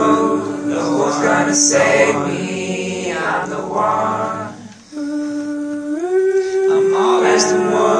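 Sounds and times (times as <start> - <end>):
vocals: 0.0 - 7.9.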